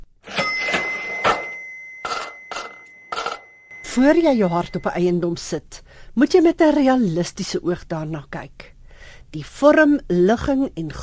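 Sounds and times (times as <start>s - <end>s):
cash register bell tone: 0.2s - 5.2s
cash register clattering mechanical bursts: 0.3s - 3.5s
speech: 3.9s - 8.7s, 9.3s - 11.0s.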